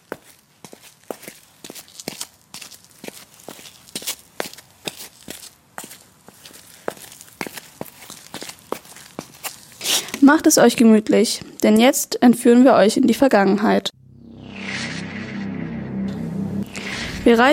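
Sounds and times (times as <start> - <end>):
footsteps of people walking across a city park: 0.0 - 10.2
speech: 10.3 - 13.9, 17.3 - 17.5.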